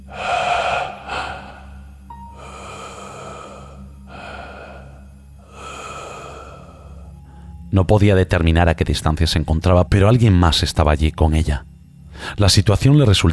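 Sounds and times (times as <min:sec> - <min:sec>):
slow heavy breathing: 0:00.0 - 0:07.7
low constant hum: 0:00.0 - 0:13.3
speech: 0:07.7 - 0:11.7, 0:12.3 - 0:13.3.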